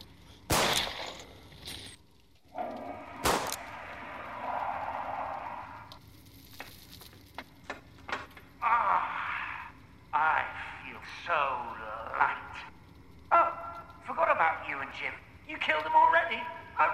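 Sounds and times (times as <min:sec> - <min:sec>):
gunshots in a video game: 0:00.5 - 0:01.1, 0:03.1 - 0:03.9
sizzling hiss: 0:02.3 - 0:07.9, 0:08.6 - 0:16.9.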